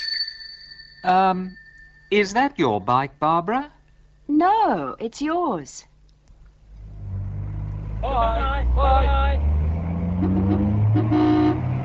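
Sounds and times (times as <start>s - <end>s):
speech: 1.0s - 5.9s, 8.0s - 9.5s
low vehicle rumble: 6.6s - 11.8s
car horn honking: 10.1s - 11.8s.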